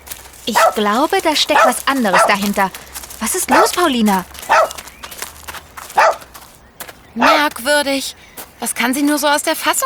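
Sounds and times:
rustling: 0.0s - 7.6s
dog barking: 0.4s - 5.0s, 5.9s - 6.3s, 7.2s - 7.5s
speech: 0.5s - 4.8s, 7.2s - 9.8s.

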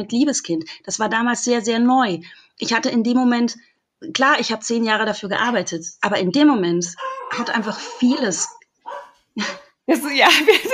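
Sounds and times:
speech: 0.0s - 8.6s, 9.4s - 10.7s
small dog barking at a delivery person at the door: 7.0s - 9.6s.

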